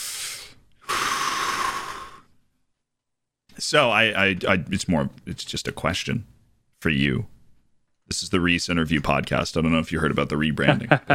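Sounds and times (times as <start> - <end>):
deep breath: 0.0 - 2.4
speech: 3.6 - 7.3, 8.1 - 11.1.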